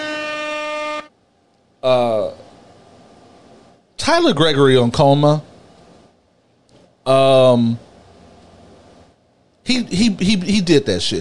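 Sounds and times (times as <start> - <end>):
air horn blasts: 0.0 - 1.2
speech: 1.8 - 2.4, 4.0 - 5.5, 7.1 - 7.8, 9.7 - 11.2.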